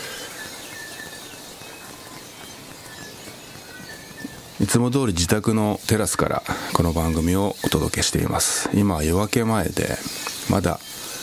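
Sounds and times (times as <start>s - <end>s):
steady rain in a lakeside forest in New Zealand: 0.0s - 11.2s
thin high wild bird calls in a lakeside forest in New Zealand: 0.0s - 11.2s
speech: 4.6s - 11.0s.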